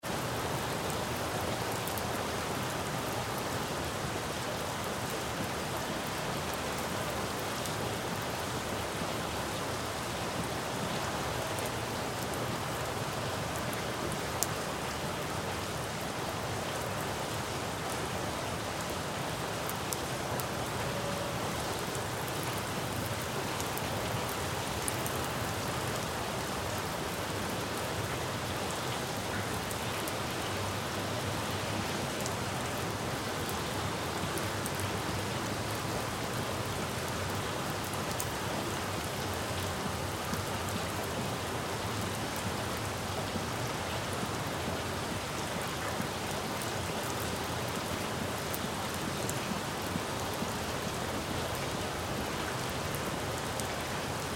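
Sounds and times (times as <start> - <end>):
rain splattering on a city street: 0.0 - 54.3.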